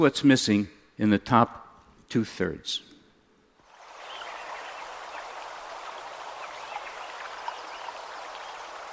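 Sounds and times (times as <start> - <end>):
speech: 0.0 - 2.9
stream flowing after selective logging: 3.6 - 8.9.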